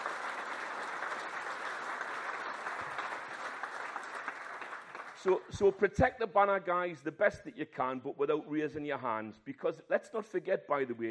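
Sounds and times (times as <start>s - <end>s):
crowd applause: 0.0s - 5.7s
speech: 5.2s - 11.0s.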